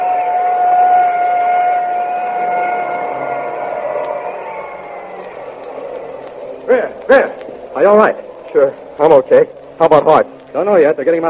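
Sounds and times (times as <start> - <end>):
passing ambulance siren wailing: 0.0 - 6.7
rushing noisy background: 0.0 - 9.8
speech: 7.1 - 11.2.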